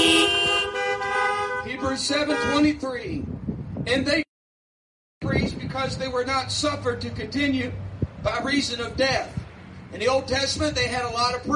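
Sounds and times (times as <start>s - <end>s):
car horn honking: 0.0s - 2.8s
speech: 2.0s - 4.3s, 5.2s - 11.5s.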